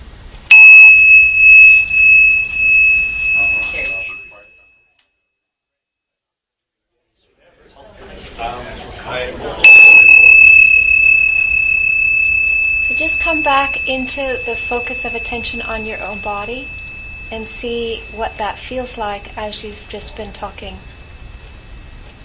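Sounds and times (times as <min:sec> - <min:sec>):
meditation bell ringing during a group meditation session: 0:00.5 - 0:04.8, 0:09.6 - 0:22.2
speech: 0:14.0 - 0:20.9.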